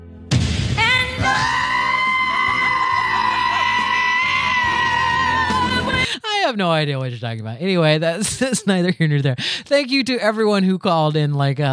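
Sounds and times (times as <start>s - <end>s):
goat screaming: 1.2s - 6.0s
speech: 6.5s - 11.7s.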